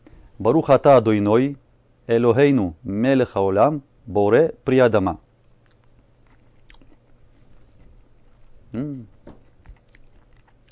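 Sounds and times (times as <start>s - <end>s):
low hum: 0.0s - 10.7s
speech: 0.4s - 5.2s
crunchy biting of food: 5.6s - 8.3s, 9.3s - 10.7s
steady chewing of food: 5.6s - 8.4s, 9.4s - 10.7s.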